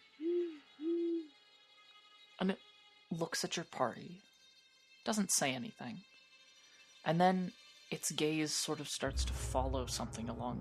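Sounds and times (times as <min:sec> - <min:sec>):
owl hooting: 0:00.0 - 0:01.4
speech: 0:02.4 - 0:04.3, 0:05.0 - 0:06.1, 0:07.0 - 0:10.5.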